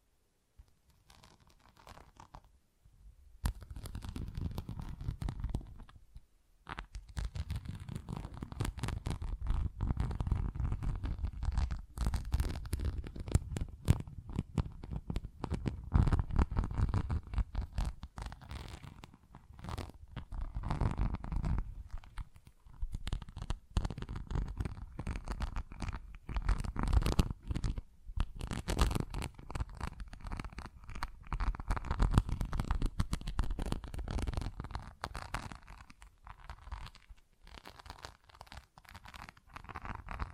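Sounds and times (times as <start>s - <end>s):
scratching on textured surfaces: 0.6s - 2.5s, 3.4s - 6.0s, 6.6s - 40.3s.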